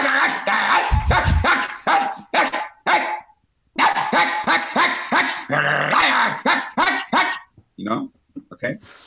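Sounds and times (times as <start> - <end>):
dog barking: 0.2 - 3.2, 3.8 - 7.5.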